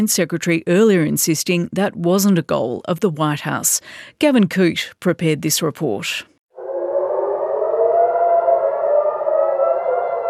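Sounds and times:
speech: 0:00.0 - 0:06.3
civil defense air raid sirens blaring across Tel Aviv Israel: 0:06.5 - 0:10.2.

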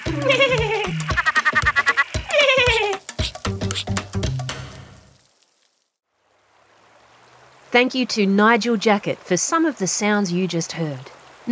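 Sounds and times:
laughing northern tree frog of Australia calling: 0:00.0 - 0:04.0
speech: 0:00.1 - 0:00.7, 0:07.7 - 0:11.4.

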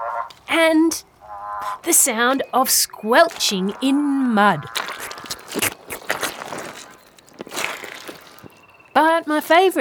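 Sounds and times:
speech: 0:00.2 - 0:05.1, 0:09.3 - 0:09.8
footsteps on a gravel track lined with moss and ferns on a bush walk in Tasmania: 0:01.6 - 0:09.2.

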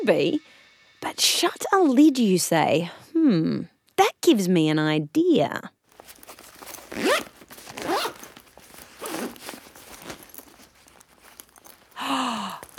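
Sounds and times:
speech: 0:00.0 - 0:05.8
zipper being pulled in a kitchen: 0:05.9 - 0:12.7.

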